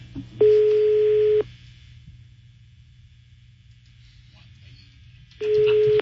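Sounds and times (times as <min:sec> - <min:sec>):
low hum: 0:00.0 - 0:05.9
phone ringback tone on an outgoing call: 0:00.4 - 0:01.4, 0:05.4 - 0:05.9.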